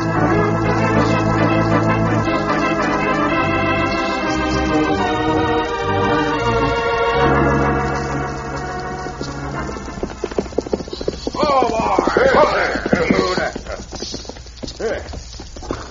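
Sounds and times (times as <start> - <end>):
horse hooves clip-clopping on a fast ride: 0.0 - 15.8
horse whinny: 10.9 - 13.8
people talking: 11.4 - 13.8, 14.8 - 15.2.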